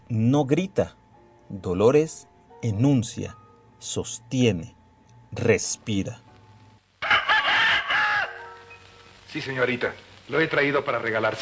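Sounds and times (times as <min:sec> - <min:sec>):
speech: 0:00.1 - 0:06.2, 0:09.3 - 0:11.4
fighting cock crowing, loud and strained: 0:07.0 - 0:08.6.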